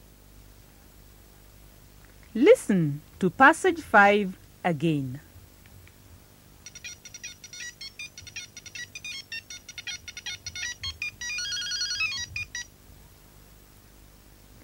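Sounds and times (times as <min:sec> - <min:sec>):
speech: 0:02.3 - 0:05.3
telephone ringing with a bright electronic ringtone of warbling beeps: 0:06.6 - 0:12.7.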